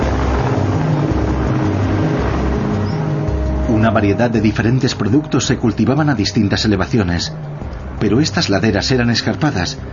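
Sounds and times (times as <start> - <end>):
army helicopter engine roar while taking off: 0.0 - 4.4
speech: 3.8 - 9.9.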